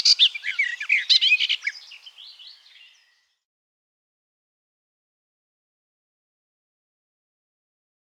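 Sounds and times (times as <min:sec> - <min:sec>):
garden warbler song: 0:00.0 - 0:03.4.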